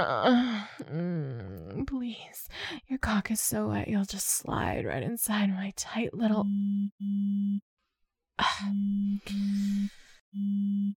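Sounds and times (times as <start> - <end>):
speech: 0.0 - 7.7, 8.4 - 10.9
phone buzzing in electronic pulses: 6.5 - 7.6, 10.4 - 10.9.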